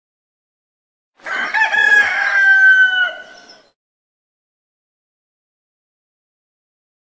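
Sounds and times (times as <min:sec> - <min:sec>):
rooster crowing: 0:01.2 - 0:03.7.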